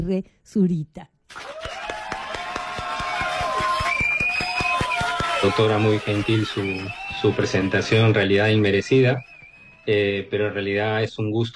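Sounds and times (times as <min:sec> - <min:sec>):
speech: 0:00.0 - 0:01.1, 0:05.4 - 0:11.5
people clapping to welcome a guest: 0:01.3 - 0:10.5.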